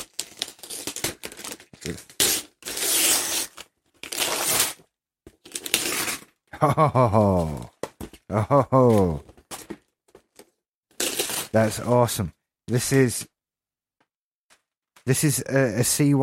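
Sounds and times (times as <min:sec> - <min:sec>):
wrapping paper tearing off a gift box: 0:00.0 - 0:04.8, 0:05.5 - 0:06.4, 0:10.9 - 0:11.8
speech: 0:01.8 - 0:02.2, 0:06.6 - 0:07.7, 0:08.3 - 0:09.3, 0:11.6 - 0:13.3, 0:15.1 - 0:16.2.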